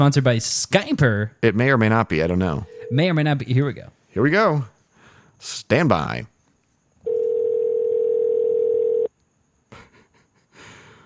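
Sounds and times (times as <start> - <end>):
speech: 0.0 - 4.7, 5.4 - 6.3
outgoing phone call electronic ringback tone: 2.7 - 3.0, 7.1 - 9.1.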